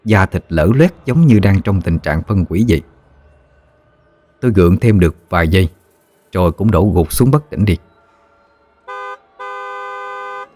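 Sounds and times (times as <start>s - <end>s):
speech: 0.0s - 2.9s, 4.4s - 7.9s
loud horn of an approaching truck blaring: 8.9s - 10.5s.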